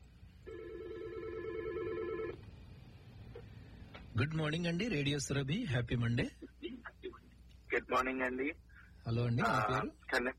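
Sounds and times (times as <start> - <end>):
telephone ringing with an incoming caller: 0.5 - 2.4
speech: 4.2 - 6.4, 7.9 - 10.3.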